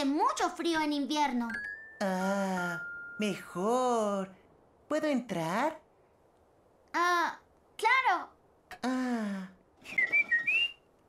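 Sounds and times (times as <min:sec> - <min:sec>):
speech: 0:00.0 - 0:05.8, 0:06.9 - 0:10.3
person whistling a short clear tune of sliding notes: 0:09.8 - 0:10.8.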